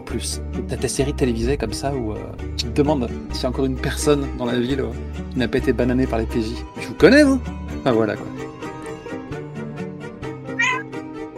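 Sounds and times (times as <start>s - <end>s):
speech: 0.1s - 8.6s
female cat meowing: 10.5s - 10.9s.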